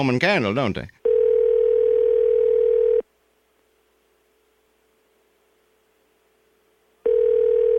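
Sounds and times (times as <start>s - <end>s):
speech: 0.0s - 1.0s
telephone ringing tone while calling: 1.0s - 3.0s, 7.0s - 7.7s.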